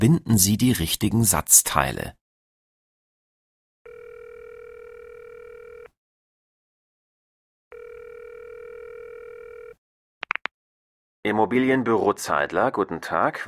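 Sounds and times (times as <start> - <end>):
speech: 0.0 - 2.2, 11.3 - 13.4
telephone ringback tones as a call is placed to an estate agent: 3.9 - 5.9, 7.7 - 9.8.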